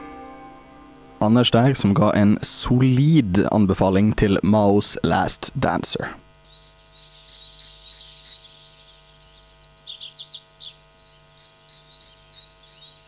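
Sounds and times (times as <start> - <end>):
speech: 1.2 - 6.2
great tit singing two-note phrases: 6.5 - 13.0.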